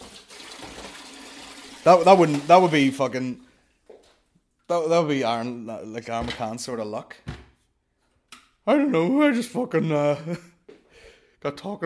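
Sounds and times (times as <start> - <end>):
tap water running into a kettle: 0.0 - 3.0
speech: 1.8 - 3.5, 4.7 - 7.3, 8.7 - 10.5, 11.4 - 11.8.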